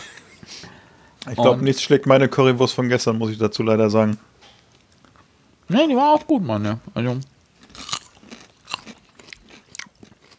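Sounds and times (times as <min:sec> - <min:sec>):
speech: 0:01.2 - 0:04.4, 0:05.7 - 0:07.3
wet chewing with crunchy bites while eating: 0:07.5 - 0:10.3.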